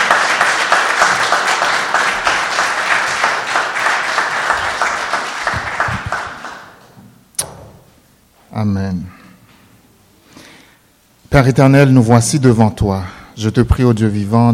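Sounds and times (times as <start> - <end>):
audience applause after a Bible reading: 0.0 - 6.9
speech: 8.6 - 9.1, 11.3 - 14.5.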